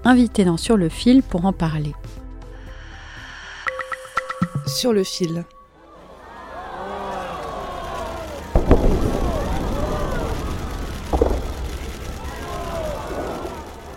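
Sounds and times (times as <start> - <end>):
speech: 0.0 - 2.2, 4.7 - 5.6
crowd murmuring and calling out at the closing ceremony: 5.7 - 13.9
rumbling crackle of fireworks: 7.6 - 13.9
fireworks booming at the Winter Olympics closing ceremony in Beijing: 8.0 - 13.9.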